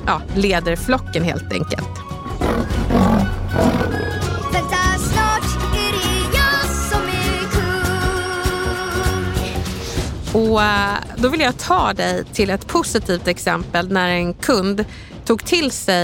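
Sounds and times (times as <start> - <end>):
dense layer of dramatic tonal music: 0.0 - 16.0
speech: 0.1 - 4.0, 10.3 - 16.0
lion roaring with deep rumbling growl: 2.3 - 4.6.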